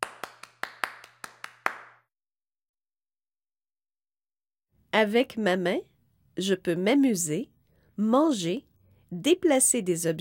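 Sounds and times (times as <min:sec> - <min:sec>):
mother clapping hands at end of a show: 0:00.0 - 0:02.1
speech: 0:05.0 - 0:10.1.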